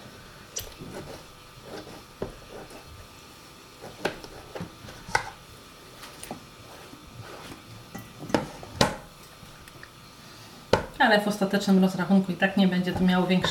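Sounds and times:
knife slicing firm fleshy tomatoes against a board: 0.7 - 2.9, 3.8 - 5.4
speech: 11.1 - 13.4.

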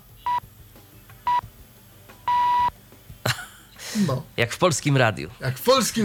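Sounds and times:
electronic countdown beeps with a longer final tone: 0.2 - 0.4, 2.3 - 2.7
speech: 4.0 - 6.0.

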